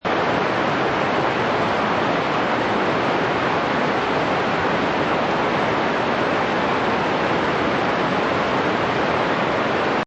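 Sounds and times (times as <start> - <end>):
heavy rain falling on roof heard from inside: 0.0 - 10.0.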